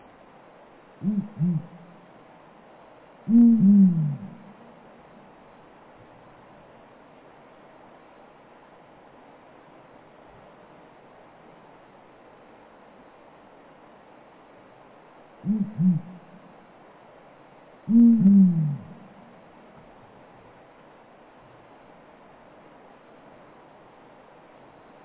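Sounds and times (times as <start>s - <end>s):
Bubo blakistoni calling: 1.0s - 2.0s, 3.3s - 4.7s, 15.4s - 16.4s, 17.9s - 19.3s.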